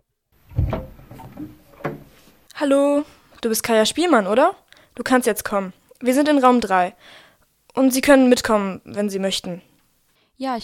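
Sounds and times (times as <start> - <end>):
wooden door pushed open with thump and creaking scrape: 0.5 - 2.2
speech: 2.6 - 9.7, 10.4 - 10.6.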